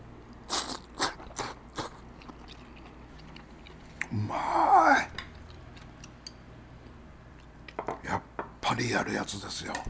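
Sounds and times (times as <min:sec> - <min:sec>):
crunching and chewing thinly sliced beef dipped in ponzu sauce: 0:00.3 - 0:04.2, 0:05.2 - 0:06.4
speech: 0:04.1 - 0:04.7, 0:08.8 - 0:09.8.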